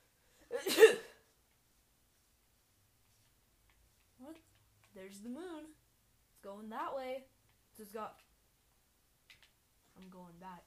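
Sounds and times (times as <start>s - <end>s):
person sneezing: 0.5s - 1.2s
speech: 5.0s - 5.8s, 6.4s - 8.3s, 10.0s - 10.6s.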